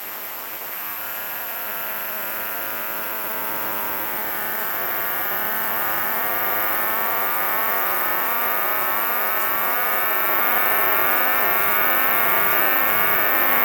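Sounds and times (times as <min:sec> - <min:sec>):
New Forest cicada continuous high buzzing song: 0:00.0 - 0:13.6.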